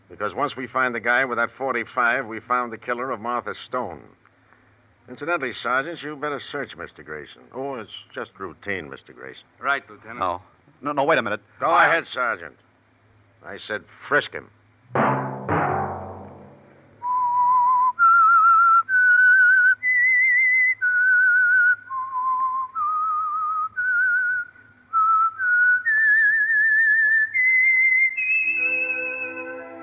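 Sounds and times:
speech: 0.1 - 4.2, 5.1 - 12.6, 13.4 - 15.2
solo whistled melody in a slow eerie tune: 17.0 - 29.8.

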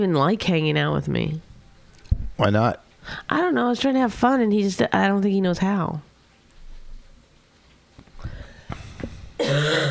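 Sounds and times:
speech: 0.0 - 1.5, 2.4 - 6.1
coughing: 9.4 - 9.9
throat clearing: 9.4 - 9.9.

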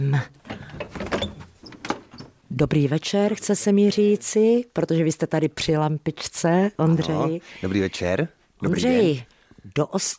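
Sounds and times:
speech: 0.0 - 0.4, 2.6 - 10.1
heavy door scraping, rattling and clunking: 0.4 - 2.4
heavy studio door being pulled open: 0.4 - 2.4.

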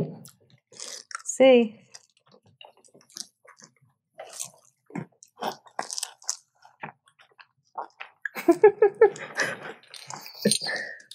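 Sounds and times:
person biting into and chewing salty crisp food: 0.2 - 8.4
speech: 1.4 - 1.8, 8.5 - 11.0.

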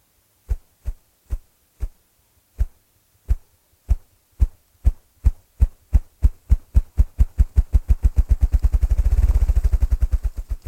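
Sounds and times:
partridge drumming its wings: 2.6 - 10.6.

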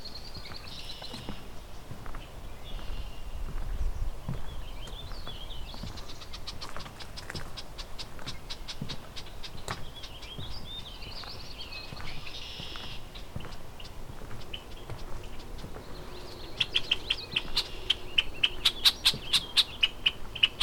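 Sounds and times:
low outdoor rumble: 0.0 - 20.6
red-winged blackbird alarm calls in a cattail marsh: 4.6 - 20.6.

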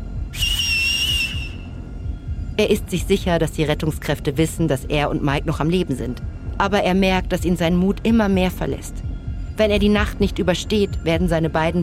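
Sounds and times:
constant low rumbling noise: 0.0 - 11.8
man whistling with two fingers in his mouth: 0.3 - 1.7
speech: 2.6 - 9.0, 9.6 - 11.8.

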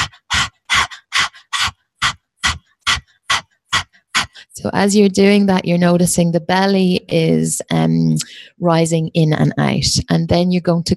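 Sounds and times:
person panting like a dog as a breath-work exercise: 0.0 - 4.6
speech: 4.6 - 10.9.

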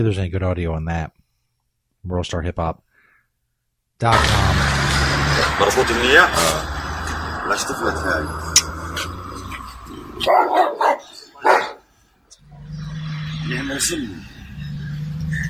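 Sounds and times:
speech: 0.0 - 1.2, 2.0 - 2.8, 4.0 - 4.8, 5.6 - 6.7, 7.5 - 8.5, 10.2 - 10.8, 13.4 - 14.4, 15.3 - 15.4
man talking and shouting: 4.0 - 11.3
large dog barking: 10.2 - 11.9.

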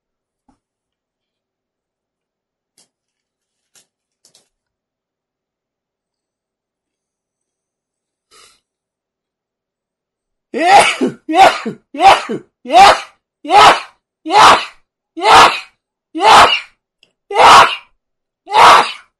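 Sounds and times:
person sneezing: 10.6 - 16.7, 17.4 - 17.9.

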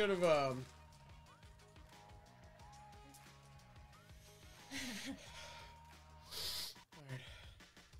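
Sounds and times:
heavy labored hyperventilating breathing: 4.2 - 7.9.

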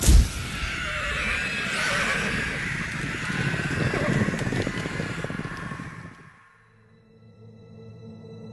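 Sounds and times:
horse giving a loud shrill whinny: 0.1 - 6.3
galloping hooves of a ridden horse: 1.3 - 6.3.

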